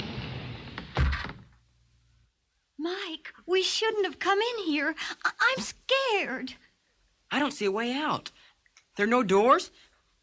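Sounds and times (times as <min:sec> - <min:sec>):
hidden wall in a candlelit gallery sliding closed with a muffled scrape and dull thud: 0:00.0 - 0:01.6
speech: 0:03.1 - 0:06.6, 0:07.3 - 0:08.4, 0:09.0 - 0:09.9.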